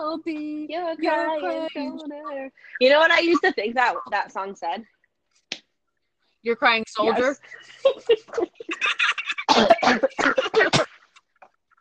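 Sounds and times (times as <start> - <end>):
speech: 0.0 - 5.0, 6.4 - 10.8
person coughing: 9.3 - 11.1.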